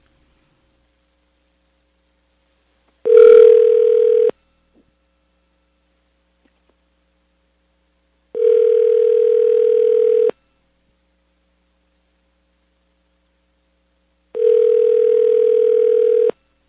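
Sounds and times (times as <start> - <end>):
long steady telephone ring tones: 3.1 - 4.3, 8.4 - 10.3, 14.4 - 16.3.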